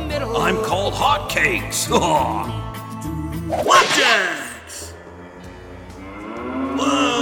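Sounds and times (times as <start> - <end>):
speech: 0.2 - 2.7, 3.5 - 4.4
cow mooing: 5.1 - 7.2.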